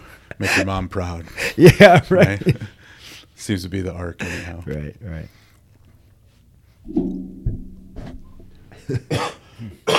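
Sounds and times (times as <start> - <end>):
speech: 0.4 - 2.8, 3.4 - 5.4, 8.9 - 9.9
harsh wet coughing: 8.8 - 9.9.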